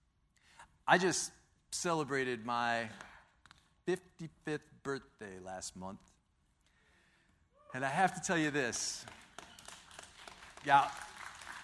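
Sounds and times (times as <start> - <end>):
speech: 0.9 - 3.1, 3.9 - 6.1, 7.7 - 9.2, 10.6 - 11.1
audience clapping: 8.1 - 11.6.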